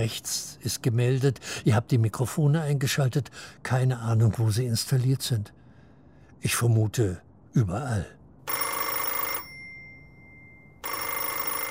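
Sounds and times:
speech: 0.0s - 5.6s, 6.4s - 8.2s
telephone ringing with an incoming call: 8.5s - 11.6s.

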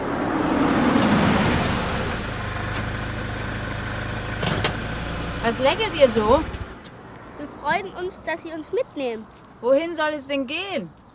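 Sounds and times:
car driving up with engine rumble and idling: 0.0s - 8.2s
speech: 5.5s - 6.6s, 7.6s - 11.0s.

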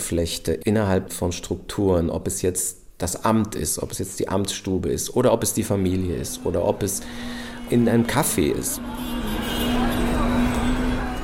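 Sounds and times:
speech: 0.1s - 9.2s
steady droning tone: 5.0s - 11.2s
gridlocked city street traffic engine rumble: 5.1s - 11.2s
car horns blaring in city traffic: 5.5s - 11.2s.

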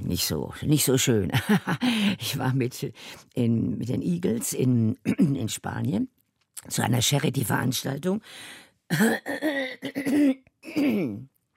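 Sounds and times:
speech: 0.1s - 11.3s
person clearing their throat: 5.0s - 5.4s, 8.9s - 11.3s
person coughing: 5.0s - 5.4s, 8.9s - 11.3s.

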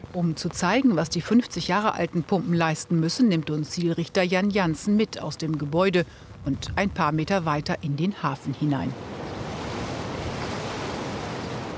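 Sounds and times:
speech: 0.2s - 9.1s
water rushing through open sluice gates into harbor: 8.4s - 11.7s.

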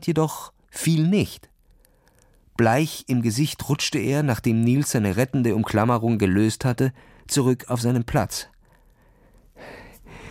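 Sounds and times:
speech: 0.0s - 1.5s, 2.6s - 8.5s
man gasping breathily: 9.0s - 10.2s.

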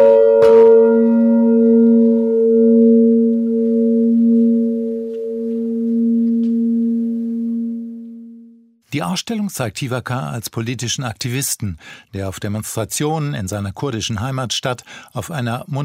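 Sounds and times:
large bell of a wood and metal artwork struck in an art exhibition: 0.0s - 8.6s
speech: 8.9s - 15.8s.

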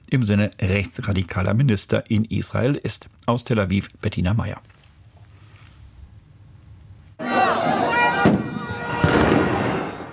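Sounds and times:
speech: 0.1s - 4.7s
crowd of protesters shouting at an intersection in Tel Aviv, Israel: 7.2s - 10.1s
stun grenades exploding among protesters: 8.2s - 10.1s.

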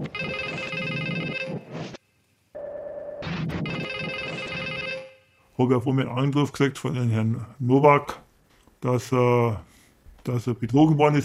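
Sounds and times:
telephone ringing with warbling electronic tone: 0.2s - 1.7s, 2.6s - 5.4s
speech: 5.6s - 8.2s, 8.8s - 11.2s.

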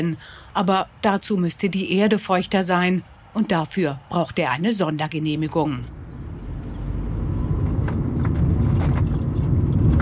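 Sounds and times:
speech: 0.0s - 6.0s
car rumbling over rough dirt farm track: 6.0s - 9.9s
loose rattling and clinking from inside the vehicle: 7.6s - 9.9s.

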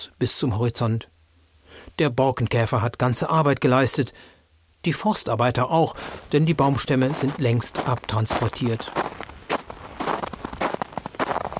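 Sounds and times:
speech: 0.1s - 1.1s, 1.9s - 9.2s
footsteps trudging along a narrow path through a cleared forest: 5.8s - 11.5s.

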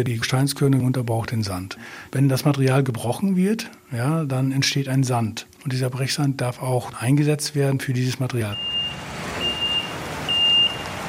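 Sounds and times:
speech: 0.0s - 9.1s
40-tonne truck engine rumble at a recycled-concrete plant: 8.5s - 11.0s
high thin beeps: 8.6s - 10.9s.

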